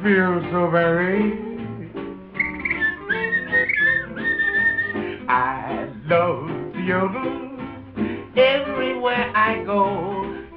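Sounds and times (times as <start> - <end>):
speech: 0.0 - 1.5, 5.3 - 7.5, 8.4 - 10.4
steady instrumental backing: 0.0 - 10.5
person whistling a bright wavering melody: 2.4 - 5.1.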